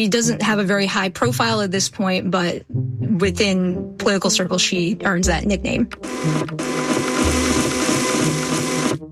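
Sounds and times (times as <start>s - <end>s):
speech: 0.0s - 7.4s
printer printing pages with hissing whir and mechanical chugging: 5.9s - 9.0s.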